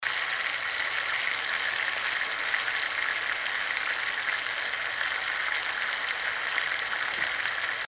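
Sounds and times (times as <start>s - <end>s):
frying: 0.0s - 7.8s.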